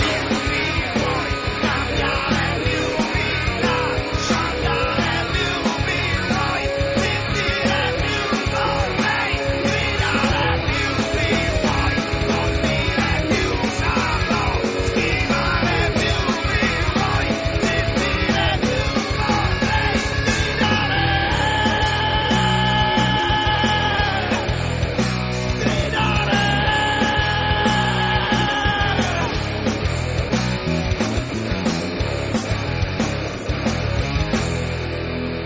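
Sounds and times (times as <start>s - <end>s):
loud dense industrial music track with pounding beat and shouted vocals: 0.0s - 35.4s.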